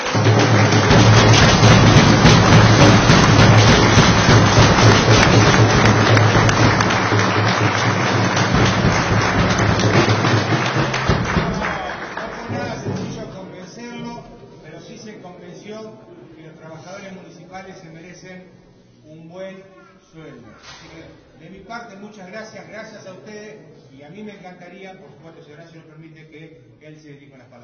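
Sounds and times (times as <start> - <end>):
audience applause: 0.0 - 13.2.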